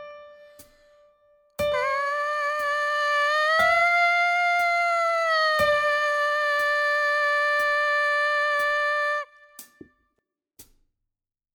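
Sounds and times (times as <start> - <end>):
buzzing sampler synth line: 1.7 - 9.5.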